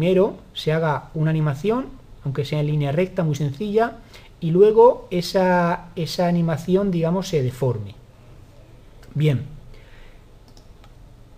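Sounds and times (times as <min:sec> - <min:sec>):
speech: 0:00.0 - 0:08.0, 0:09.2 - 0:09.5
low steady hum: 0:00.0 - 0:11.3
soft sharp computer mouse clicks: 0:10.4 - 0:11.0.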